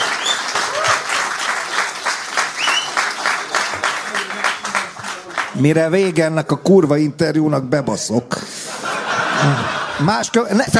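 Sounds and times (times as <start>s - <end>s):
audience applause: 0.0s - 5.8s
speech: 5.6s - 8.4s, 9.4s - 10.7s
laughter: 8.4s - 10.7s.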